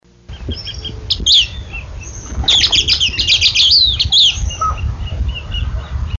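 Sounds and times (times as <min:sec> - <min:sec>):
Southern Scrub-Flycatcher Sublegatus modestus singing: 0:00.2 - 0:06.1.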